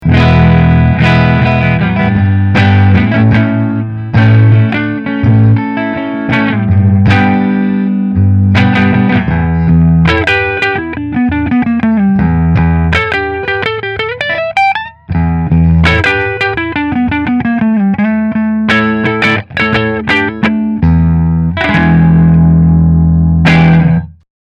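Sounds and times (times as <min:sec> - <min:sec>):
electric guitar with cherry neck: 0:00.0 - 0:24.2.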